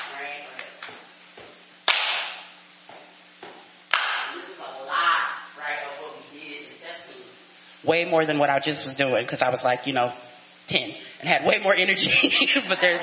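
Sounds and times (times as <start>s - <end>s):
step-team style body percussion of claps and slaps: 1.8s - 2.5s, 3.9s - 4.4s
speech: 7.8s - 13.0s
laughter: 12.0s - 13.0s.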